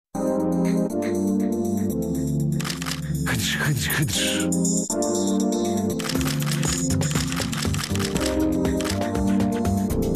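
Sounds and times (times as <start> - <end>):
steady loud musical backdrop: 0.2 - 10.1
camera shutter clicks: 2.6 - 3.1, 6.0 - 9.1
speech: 3.3 - 6.2.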